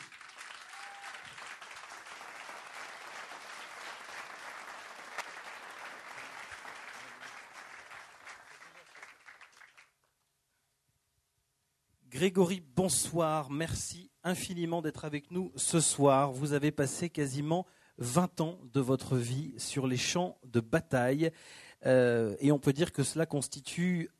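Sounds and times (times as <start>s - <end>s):
large audience applauding a guest author: 0.0s - 10.0s
speech: 12.2s - 24.1s.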